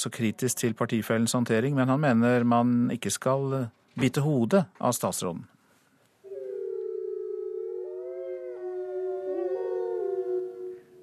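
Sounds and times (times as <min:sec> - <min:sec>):
speech: 0:00.0 - 0:05.6
several wolves howling in chorus: 0:06.3 - 0:11.0.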